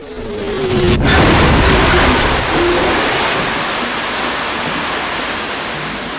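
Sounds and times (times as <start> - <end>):
heavy impact of a small Cessna plane crashing into water: 0.8 - 3.9
churning water rushing as a small Cessna plane crashes into water: 0.8 - 6.1.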